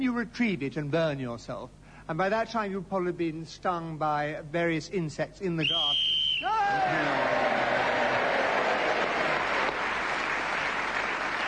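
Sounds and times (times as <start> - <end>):
speech: 0.0 - 8.0
large audience applause: 6.7 - 11.4.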